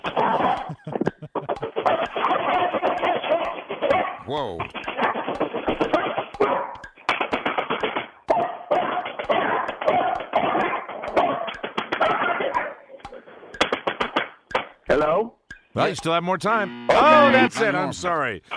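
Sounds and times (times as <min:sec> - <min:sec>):
laughter: 0:00.0 - 0:02.2
sharp tapping clicks: 0:00.0 - 0:18.5
mixed breed dog barking: 0:01.9 - 0:04.2, 0:05.9 - 0:06.8, 0:08.3 - 0:12.8
speech: 0:04.3 - 0:05.0, 0:15.8 - 0:18.5.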